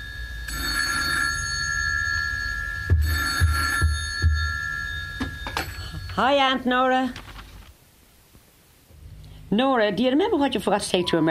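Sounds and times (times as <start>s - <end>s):
telephone ringing with a high electronic tone in a Dublin home: 0.0s - 7.2s
dull low knocks: 2.8s - 5.4s
speech: 6.2s - 7.2s, 9.5s - 11.2s.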